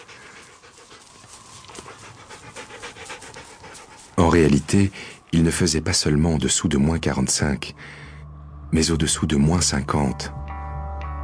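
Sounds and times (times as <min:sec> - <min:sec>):
native husky dog panting in bitter cold of about 60 degrees below zero: 0:00.0 - 0:05.4
speech: 0:04.3 - 0:08.0, 0:08.7 - 0:10.4.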